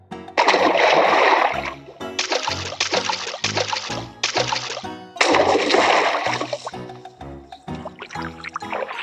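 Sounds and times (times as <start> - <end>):
ducklings splashing and paddling into water: 0.4 - 6.7.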